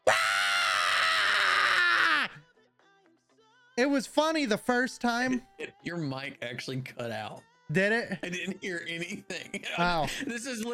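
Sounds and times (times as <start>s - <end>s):
human voice imitating screaming goats: 0.0s - 2.4s
speech: 3.8s - 10.7s.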